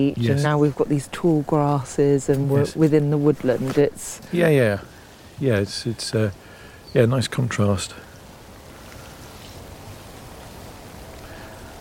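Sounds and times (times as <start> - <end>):
speech: 0.0 - 8.0
light rain falling in woodland: 0.0 - 11.7.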